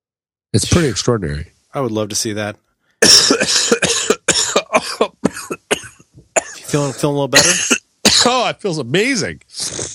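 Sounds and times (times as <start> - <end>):
speech: 0.5 - 5.6, 6.7 - 9.9
harsh repeated coughing: 3.0 - 8.4.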